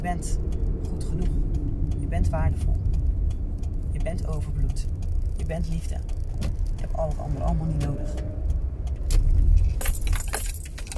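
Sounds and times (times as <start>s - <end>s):
steady low rumble: 0.0s - 10.9s
speech: 0.1s - 1.5s, 2.1s - 2.9s, 4.0s - 8.4s
keys jangling: 9.6s - 10.9s.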